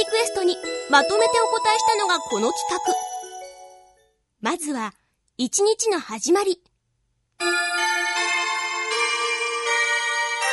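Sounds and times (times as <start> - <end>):
bright bell-like chime melody: 0.0 - 4.2, 7.4 - 10.5
speech: 0.4 - 3.1, 4.4 - 6.7, 7.4 - 7.7.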